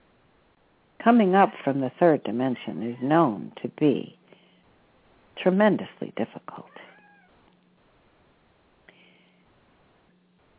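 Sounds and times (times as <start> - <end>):
speech: 1.0 - 4.2, 5.4 - 6.9
kitten meowing: 6.8 - 7.4.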